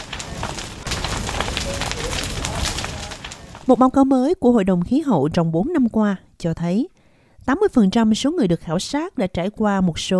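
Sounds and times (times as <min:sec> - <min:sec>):
wind: 0:00.0 - 0:03.8
rain: 0:00.0 - 0:03.9
burning fire crackling and popping: 0:00.0 - 0:05.8
speech: 0:03.7 - 0:10.1.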